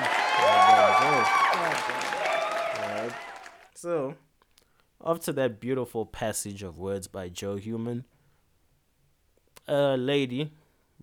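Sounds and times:
crowd applause: 0:00.0 - 0:03.7
speech: 0:03.8 - 0:04.3, 0:05.0 - 0:08.2, 0:09.6 - 0:11.0.

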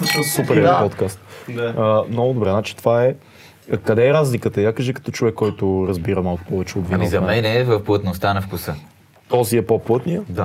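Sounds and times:
wine glasses clinking in a toast: 0:00.0 - 0:00.8
speech: 0:00.2 - 0:10.4.

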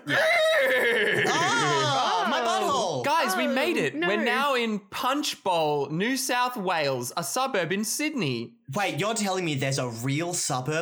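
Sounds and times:
voice imitating a wheel-and-horse contraption screeching to a halt: 0:00.0 - 0:02.6
laughter: 0:00.0 - 0:04.2
speech: 0:00.1 - 0:00.3, 0:03.4 - 0:10.8.

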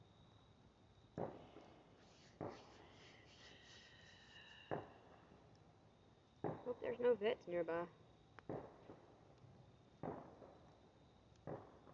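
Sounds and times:
quiet hiss: 0:00.0 - 0:11.9
distant fireworks booms: 0:01.1 - 0:02.9, 0:04.6 - 0:05.2, 0:06.4 - 0:07.0, 0:08.4 - 0:09.2, 0:10.0 - 0:10.8, 0:11.4 - 0:11.9
speech: 0:06.7 - 0:08.0.

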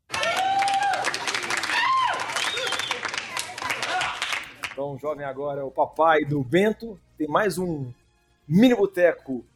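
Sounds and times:
crowd applauding: 0:00.0 - 0:04.8
whistles: 0:02.3 - 0:03.2
speech: 0:04.8 - 0:09.5.

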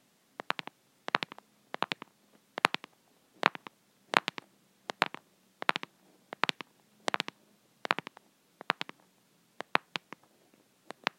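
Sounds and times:
faint low hum: 0:00.0 - 0:11.1
press-on fake fingernails tapping a small plastic plant pot: 0:00.4 - 0:09.0.

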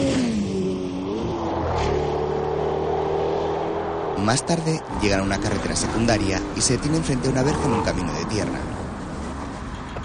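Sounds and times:
two cars accelerating hard away from a petrol station: 0:00.0 - 0:10.0
speech: 0:04.2 - 0:08.8.

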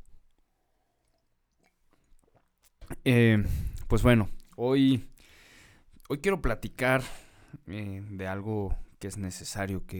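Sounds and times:
person sipping coffee: 0:00.7 - 0:04.6
swallowing: 0:01.0 - 0:04.6
speech: 0:03.0 - 0:05.1, 0:06.1 - 0:09.9.

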